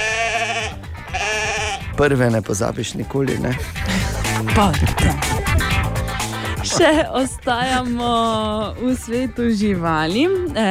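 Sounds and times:
sheep bleating: 0:00.0 - 0:02.0
speech: 0:02.0 - 0:05.5, 0:06.8 - 0:10.6
laughter: 0:03.1 - 0:09.8.

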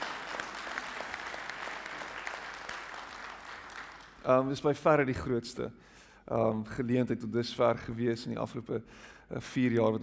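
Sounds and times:
audience applause at a food market fundraiser event: 0:00.0 - 0:04.2
speech: 0:04.2 - 0:10.0.

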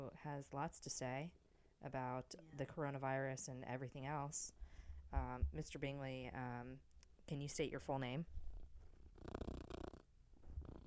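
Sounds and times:
speech: 0:00.0 - 0:08.4
cat headbutting and rubbing the microphone: 0:05.1 - 0:05.8, 0:08.3 - 0:10.8
male cat purring: 0:08.5 - 0:10.8.

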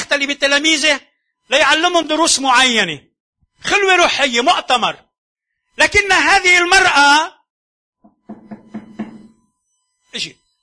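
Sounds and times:
speech: 0:00.1 - 0:05.0, 0:05.8 - 0:07.4, 0:10.1 - 0:10.4
knocking on a door: 0:08.0 - 0:09.4.

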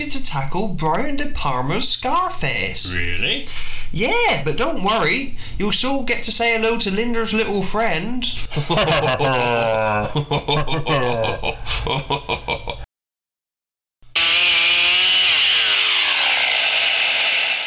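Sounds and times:
speech: 0:00.0 - 0:12.8
laughter: 0:08.5 - 0:12.8
chainsaws starting up and revving: 0:14.1 - 0:17.6.

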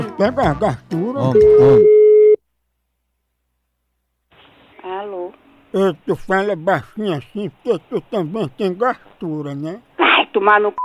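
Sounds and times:
speech: 0:00.2 - 0:02.0, 0:05.7 - 0:10.8
telephone busy signal when placing a call: 0:01.4 - 0:02.4.

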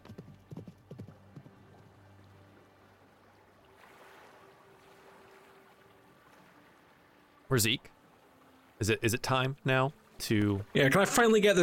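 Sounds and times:
horse hooves clip-clopping: 0:00.0 - 0:02.1
speech: 0:07.5 - 0:08.0, 0:08.8 - 0:11.6.

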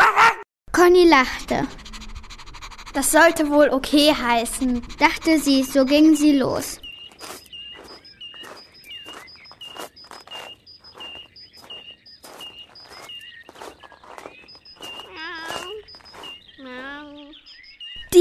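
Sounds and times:
birds chirping and tweeting: 0:00.1 - 0:18.2
speech: 0:00.8 - 0:01.8, 0:02.9 - 0:06.8
person's footsteps crunching outdoors while walking a dog: 0:06.9 - 0:16.4.

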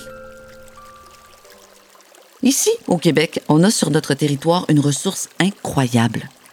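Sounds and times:
flowing river water rushing: 0:00.0 - 0:03.0
speech: 0:02.4 - 0:06.4.

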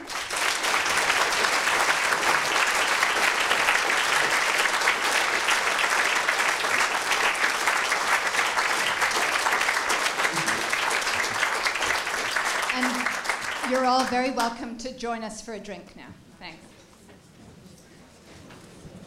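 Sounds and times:
audience applause for lecture speaker: 0:00.0 - 0:14.6
speech: 0:13.9 - 0:16.6.

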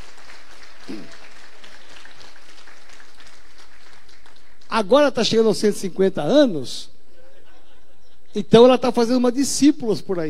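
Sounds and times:
church audience applauding for a woman who serves communion: 0:00.0 - 0:04.7
speech: 0:04.8 - 0:06.9, 0:08.4 - 0:10.2.

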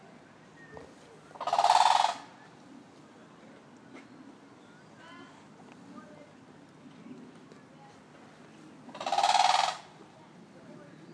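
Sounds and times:
toucan pulsed grating croak call: 0:01.3 - 0:02.5, 0:08.9 - 0:10.0.

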